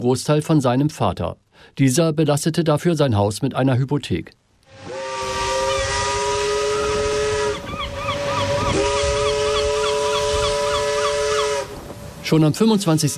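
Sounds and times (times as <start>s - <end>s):
speech: 0.0s - 5.0s, 12.3s - 13.1s
steamship whistle blowing a long sustained chord: 4.7s - 11.9s
steady hissing steam: 4.7s - 13.1s.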